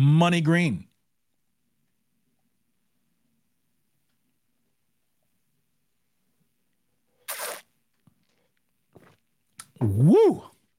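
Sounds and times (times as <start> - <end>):
speech: 0.0 - 0.9, 9.8 - 10.5
soft slurping gulp: 7.2 - 7.7
loud harsh slurp from a drink: 7.2 - 7.8.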